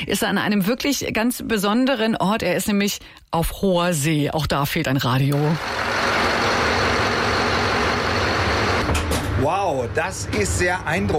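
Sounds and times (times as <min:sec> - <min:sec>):
speech: 0:00.0 - 0:06.0, 0:09.4 - 0:11.1
ship's bow thruster motor running: 0:05.6 - 0:08.9.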